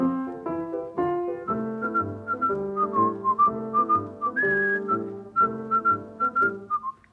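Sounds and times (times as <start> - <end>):
steady instrumental accompaniment: 0.0 - 7.1
person whistling a lilting tune: 1.5 - 7.1.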